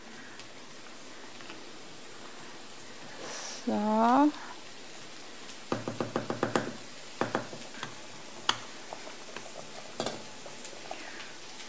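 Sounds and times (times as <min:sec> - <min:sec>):
faint scattered crackles and ticks: 0:00.0 - 0:05.7, 0:06.7 - 0:11.6
cabbage steaming in a pan: 0:00.0 - 0:11.6
speech: 0:03.7 - 0:04.5.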